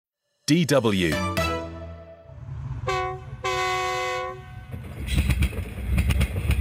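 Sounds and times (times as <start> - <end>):
speech: 0.5 - 1.4
train horn blasts: 1.6 - 4.8
train rumbling: 2.3 - 6.6
train cars clattering and rolling: 4.6 - 6.6.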